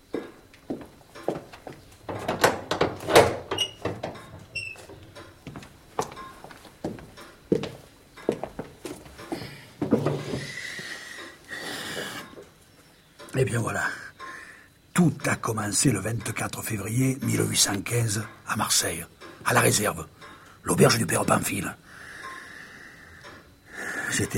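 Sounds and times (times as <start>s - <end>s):
sharp knocks and scuffs: 0.1s - 10.6s
footsteps: 0.1s - 12.6s
door being closed: 2.0s - 5.2s, 9.9s - 10.6s
short squeaky creak: 3.1s - 5.0s
speech: 13.4s - 14.0s, 15.0s - 21.8s, 24.2s - 24.3s.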